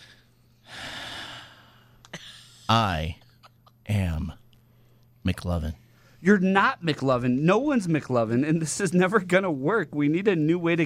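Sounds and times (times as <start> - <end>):
person taking a deep breath: 0.0 - 2.6
speech: 2.7 - 3.2, 5.3 - 10.8.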